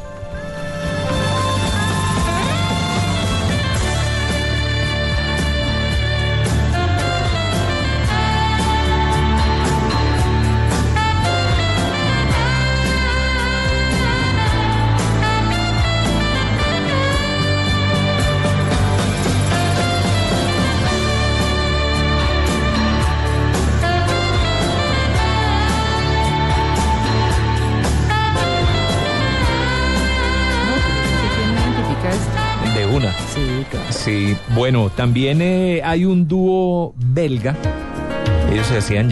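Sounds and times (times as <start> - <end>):
saxophone riff within a full song: 0.0 - 34.9
steady bass and drum groove: 0.0 - 39.0
speech: 34.7 - 39.0.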